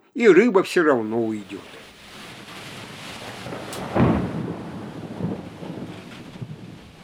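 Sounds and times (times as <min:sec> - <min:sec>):
speech: 0:00.2 - 0:01.8
rain: 0:01.0 - 0:07.0
rolling thunder: 0:01.4 - 0:07.0
wind: 0:01.6 - 0:07.0.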